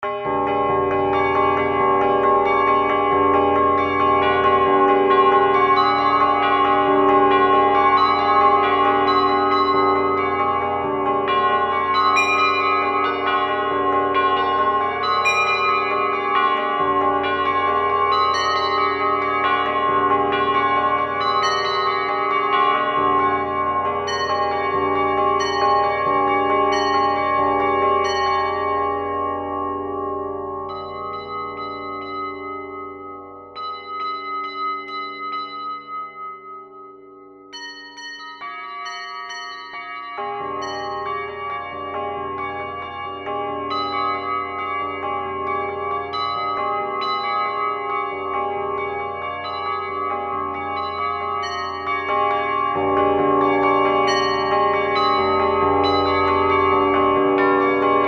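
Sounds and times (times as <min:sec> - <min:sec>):
bells without octaves: 0:00.0 - 0:58.0.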